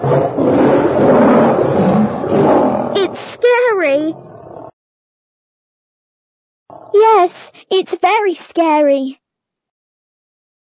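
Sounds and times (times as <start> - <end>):
mother lion roaring: 0.0 - 3.2, 4.1 - 4.8
speech: 7.3 - 9.2.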